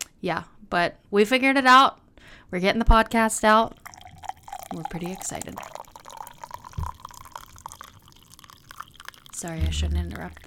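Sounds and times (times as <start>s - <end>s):
speech: 0.2s - 3.8s, 4.7s - 5.8s, 9.4s - 10.4s
hot water pouring into a French press: 3.5s - 10.4s
soft low thump: 9.6s - 10.2s.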